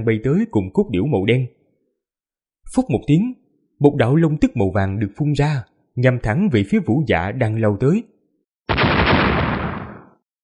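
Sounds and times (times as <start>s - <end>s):
speech: 0.0s - 1.6s, 2.7s - 8.1s
several explosions going off almost at once: 8.7s - 10.2s.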